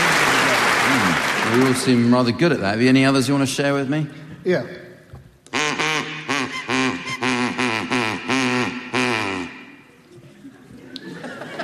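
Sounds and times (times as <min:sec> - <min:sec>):
speech: 0:00.9 - 0:04.8
person imitating a duck with nasal quacks: 0:05.5 - 0:09.8
laughter: 0:09.9 - 0:11.6.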